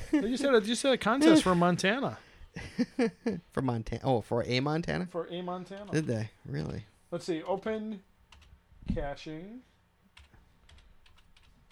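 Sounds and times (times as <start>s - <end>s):
speech: 0.2s - 8.1s, 8.8s - 9.7s
one-handed typing on a computer keyboard: 8.3s - 8.6s, 10.1s - 11.7s.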